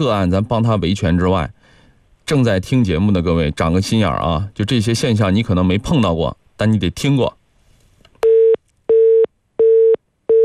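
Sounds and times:
speech: 0.0 - 1.6, 2.3 - 7.4
telephone busy signal, call not connecting: 8.2 - 10.4.

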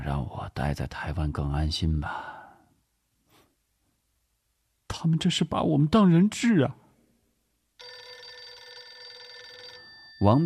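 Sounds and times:
speech: 0.1 - 2.4, 5.0 - 6.8, 10.2 - 10.4
telephone bell ringing with metallic trill: 7.8 - 10.4.

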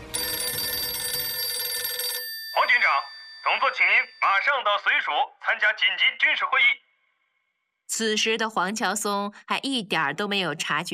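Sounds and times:
telephone ringing with an incoming call: 0.0 - 5.2
speech: 2.8 - 6.8, 7.9 - 10.9.

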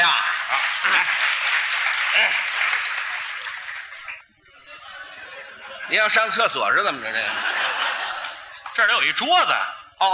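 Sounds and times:
audience applause at a live stage comedy show: 0.0 - 4.3
laughter: 0.0 - 9.0
speech: 5.9 - 7.7, 8.8 - 10.1.

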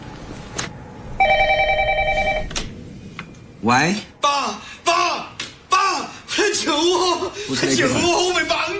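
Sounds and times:
phone ringback tone during an outgoing call: 1.2 - 2.5
speech: 3.7 - 4.7, 6.5 - 8.7.

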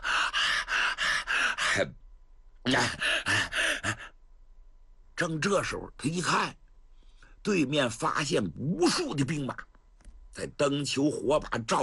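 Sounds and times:
storyteller imitating heavy open-mouthed panting of a warrior: 0.0 - 1.9, 2.7 - 4.2
speech: 1.8 - 2.0, 2.6 - 3.4, 5.2 - 6.6, 7.4 - 9.7, 10.4 - 11.8.

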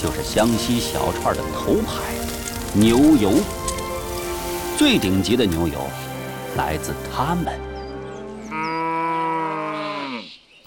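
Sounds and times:
speech: 0.0 - 3.8, 4.8 - 7.7
Xiangxi yellow cow mooing in Hunan: 8.5 - 10.4.

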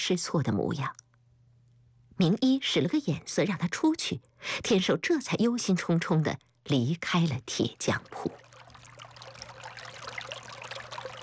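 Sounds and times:
speech: 0.0 - 1.0, 2.2 - 8.5
stream water trickling: 7.7 - 11.2.

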